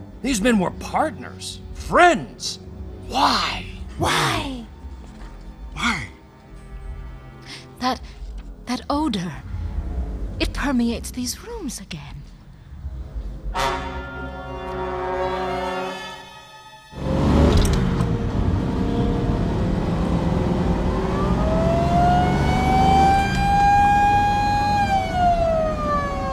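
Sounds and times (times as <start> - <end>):
ambulance siren wailing: 0.0 - 6.0, 16.9 - 26.3
loud rumbling vehicle engine: 0.0 - 15.2, 17.0 - 26.3
speech: 0.2 - 4.6, 7.8 - 9.5, 10.6 - 12.2.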